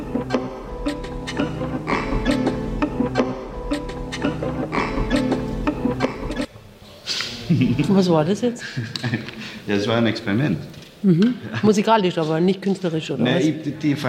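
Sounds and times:
dense sustained layer of tones sampled and mixed live on a laptop: 0.0 - 6.5
irregular sharp taps on instruments: 0.3 - 6.5
speech: 7.6 - 14.0.

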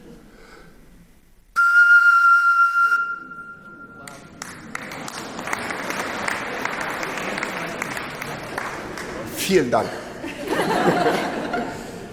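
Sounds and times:
whistling tone from breath blown across a bottle partly filled with water: 1.6 - 4.1
audience applause: 4.0 - 9.7
laughter: 4.7 - 12.1
speech: 9.5 - 10.0.

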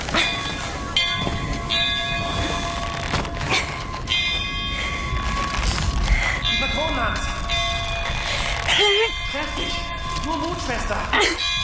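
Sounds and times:
large weather bell rung hard by pulling its rope: 0.2 - 5.6, 6.4 - 11.6.

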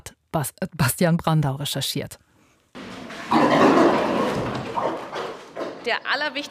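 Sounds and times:
speech: 0.4 - 2.2, 5.8 - 6.4
pigs with intact curly tails grunting in a barn: 2.8 - 5.9.

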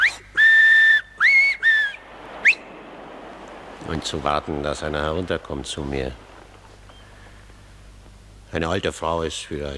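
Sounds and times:
loud shrill finger whistles: 0.0 - 2.7
speech: 3.9 - 6.3, 8.6 - 9.7.

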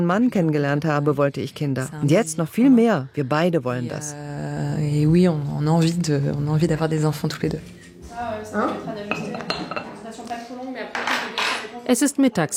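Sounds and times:
speech: 0.0 - 9.2, 11.9 - 12.5
dishes and cutlery clinking in a small staff kitchen of a doctor's practice: 7.3 - 11.8.

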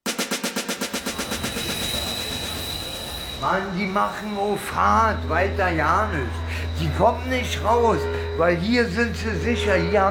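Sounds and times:
train rushing past at a Berlin station: 0.5 - 10.0
train wheels clattering at a Berlin station: 0.8 - 5.2
speech: 3.4 - 10.0.

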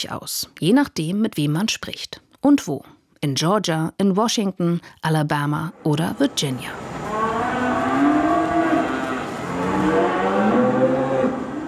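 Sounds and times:
speech: 0.0 - 6.9
cattle and calves mooing in a new open barn on a farm in Virginia: 5.7 - 11.6.

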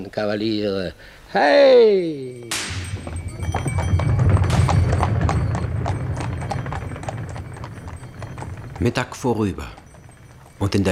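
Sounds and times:
speech: 0.0 - 3.2, 8.8 - 9.8, 10.6 - 10.8
horse hooves clip-clopping: 2.4 - 10.8
low rumbling background: 2.8 - 10.8.

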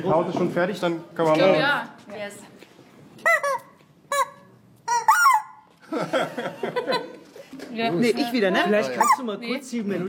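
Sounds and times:
speech: 0.0 - 2.6, 5.9 - 7.0, 7.7 - 10.0
chickens squawking: 3.2 - 5.7, 8.8 - 9.4
laughter: 5.8 - 7.6.

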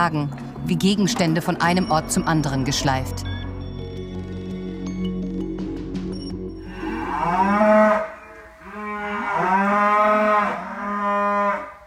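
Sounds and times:
speech: 0.0 - 3.4
low rumbling background: 0.0 - 7.2
cattle herd bellowing: 6.6 - 11.8.

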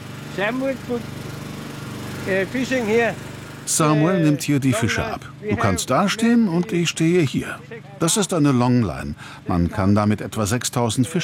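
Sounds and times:
small fishing boat motor running: 0.0 - 4.3
speech: 0.4 - 1.2, 2.3 - 11.2.

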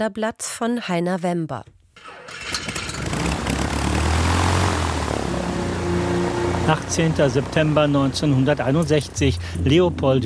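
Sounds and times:
speech: 0.0 - 1.8, 6.7 - 10.2
propeller airliner engines droning: 2.0 - 10.2.

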